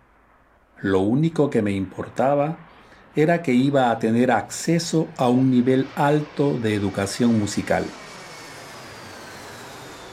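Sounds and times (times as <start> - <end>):
faint high whine: 0.0 - 10.1
speech: 0.8 - 8.0
jet airplane engine roar: 1.3 - 10.1.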